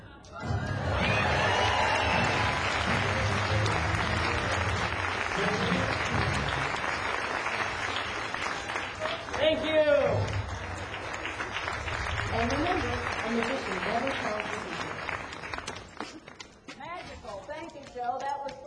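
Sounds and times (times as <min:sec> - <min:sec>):
faint cheering: 0:00.4 - 0:06.8
crowd applauding at the finish of a magic trick: 0:00.5 - 0:16.6.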